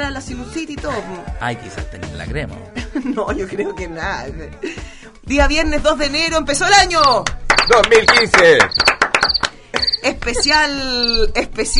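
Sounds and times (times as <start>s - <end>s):
speech: 0.0s - 8.8s, 10.0s - 11.7s
laughter: 2.8s - 4.8s, 9.7s - 10.8s
crickets chirping: 8.8s - 11.2s.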